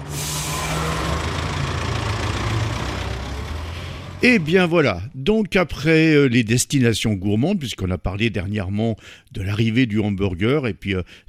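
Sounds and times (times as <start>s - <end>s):
large bus engine idling: 0.0s - 5.2s
speech: 4.2s - 11.2s.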